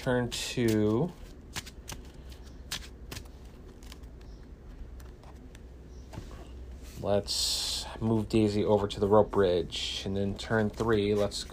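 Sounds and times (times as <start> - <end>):
speech: 0.0 - 1.2, 7.0 - 11.5
deck of cards being shuffled during a card game: 0.4 - 5.7.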